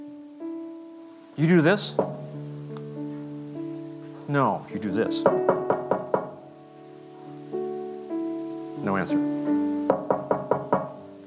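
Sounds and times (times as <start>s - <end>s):
speech: 1.4s - 2.2s, 4.3s - 5.6s, 8.8s - 9.6s
knocks as if rapping on a wooden door: 1.9s - 2.4s, 5.2s - 6.4s, 9.9s - 11.1s.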